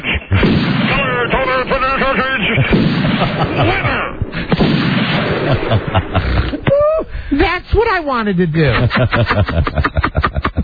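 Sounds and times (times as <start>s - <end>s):
gunfire from weapons being shot: 0.0s - 6.5s
speech: 2.1s - 4.2s, 7.9s - 10.3s
laughter: 2.1s - 4.5s, 5.2s - 7.1s, 8.6s - 10.6s.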